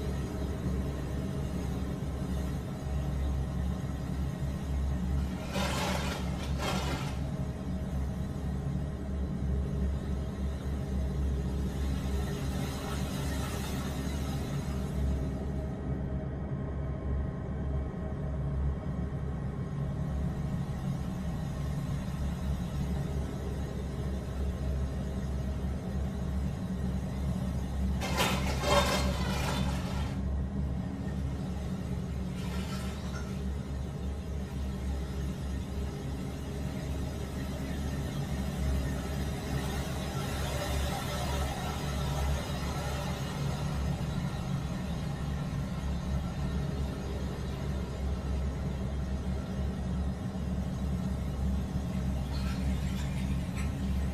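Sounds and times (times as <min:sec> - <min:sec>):
interior building ambience: 0:00.0 - 0:54.1.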